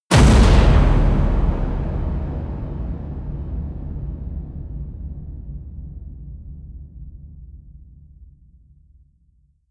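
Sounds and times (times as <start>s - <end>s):
distorted impacts: 0.1s - 3.8s.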